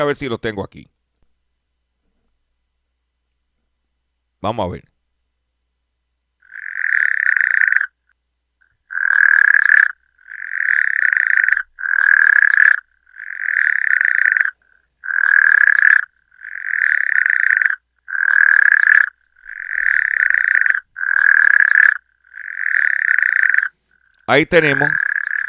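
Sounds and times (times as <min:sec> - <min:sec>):
speech: 0:00.0 - 0:00.9, 0:04.4 - 0:04.9, 0:24.3 - 0:25.0
frog croaking: 0:06.4 - 0:08.1, 0:08.8 - 0:25.4.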